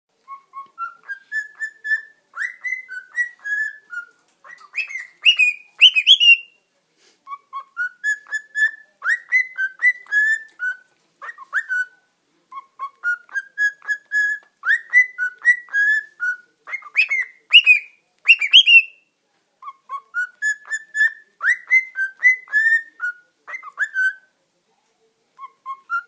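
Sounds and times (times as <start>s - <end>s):
Dutch canary singing: 0.3s - 6.6s, 7.3s - 19.0s, 19.6s - 24.2s.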